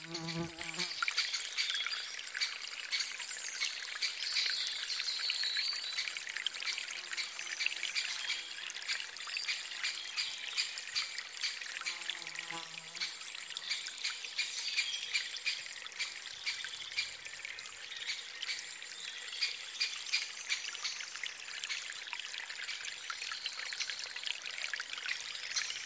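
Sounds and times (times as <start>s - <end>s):
stream trickling through a spring forest: 0.0s - 25.8s.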